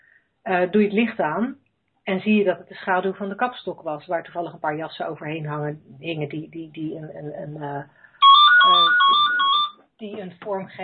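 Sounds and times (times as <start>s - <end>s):
speech: 0.5s - 8.0s, 8.6s - 9.3s, 10.0s - 10.8s
mobile phone ringtone with repeating electronic melody: 8.2s - 9.8s.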